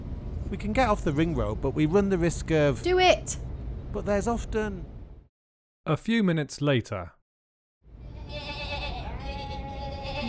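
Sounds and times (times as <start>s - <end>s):
speech: 0.5s - 4.9s, 5.8s - 7.2s
sheep bleating in a field beside a village road: 8.1s - 10.2s.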